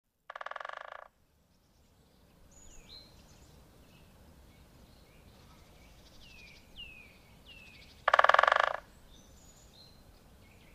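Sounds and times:
great spotted woodpecker drumming: 0:00.3 - 0:01.1, 0:08.0 - 0:08.9.

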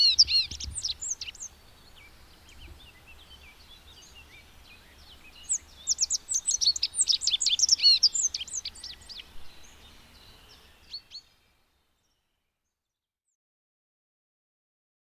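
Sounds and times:
rock bunting singing: 0:00.0 - 0:11.3.

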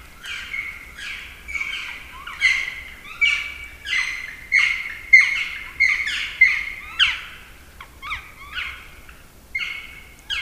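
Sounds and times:
black woodpecker giving clear ringing calls: 0:00.2 - 0:07.4, 0:09.6 - 0:10.3.

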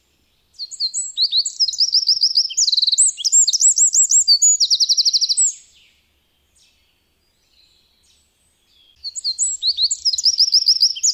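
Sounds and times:
Eurasian wren singing: 0:00.0 - 0:11.1.

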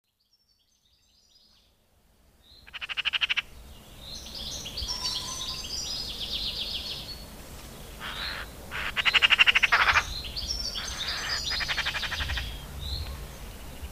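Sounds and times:
Eurasian magpie giving harsh rattling chatter: 0:02.7 - 0:03.5, 0:08.0 - 0:10.1, 0:10.8 - 0:12.6.

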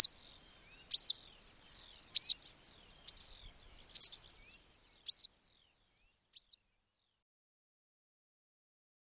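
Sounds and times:
Western yellow wagtail calls: 0:00.0 - 0:05.3, 0:06.3 - 0:06.6.

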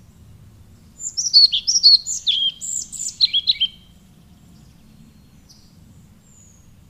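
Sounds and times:
European pied flycatcher song: 0:00.0 - 0:06.8.

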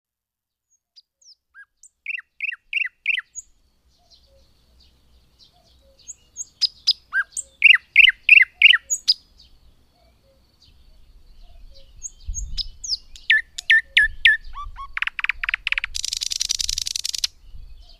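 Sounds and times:
thrush nightingale song with chopping notes, sweeping notes and sharp whistles: 0:00.6 - 0:17.9.

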